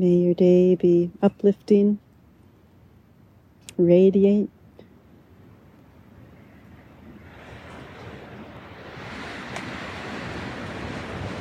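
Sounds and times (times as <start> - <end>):
speech: 0.0 - 2.0, 3.8 - 4.6
wind blowing: 0.0 - 11.3
water gently lapping: 7.2 - 11.3.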